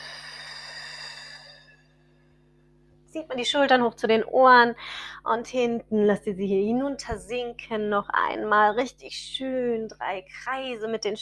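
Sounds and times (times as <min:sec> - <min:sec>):
long exhale through the mouth in a guided breathing exercise: 0:00.0 - 0:02.0
faint steady hum: 0:00.0 - 0:11.1
speech: 0:03.1 - 0:11.1.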